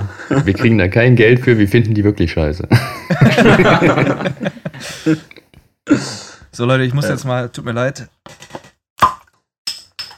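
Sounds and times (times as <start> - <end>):
speech: 0.3 - 8.5
laughter: 2.7 - 5.4
beer bottle cap clicks: 9.0 - 10.1.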